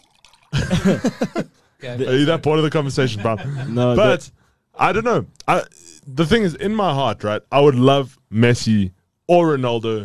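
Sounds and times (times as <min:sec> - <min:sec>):
water pouring out of a bottle: 0:00.0 - 0:01.2
laughter: 0:00.6 - 0:04.2
speech: 0:00.6 - 0:10.0.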